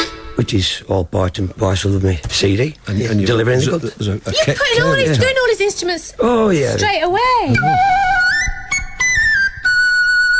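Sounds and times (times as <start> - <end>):
speech: 0.4 - 8.0
penny whistle playing a short bright melody: 7.5 - 10.3.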